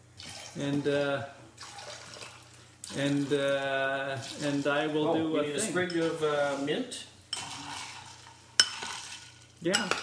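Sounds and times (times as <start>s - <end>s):
soda pouring into glasses: 0.2s - 4.8s, 7.4s - 9.6s
speech: 0.6s - 1.4s, 2.9s - 7.1s, 9.6s - 10.0s.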